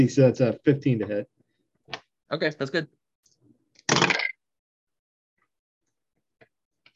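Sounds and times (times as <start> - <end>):
speech: 0.0 - 3.0
die rolled across a hard table: 3.9 - 4.4.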